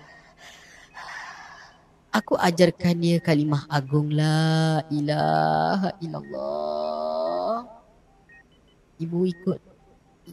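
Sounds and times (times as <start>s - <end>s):
harsh labored gasping breaths: 0.0s - 1.8s
speech: 2.2s - 7.1s, 9.0s - 9.6s.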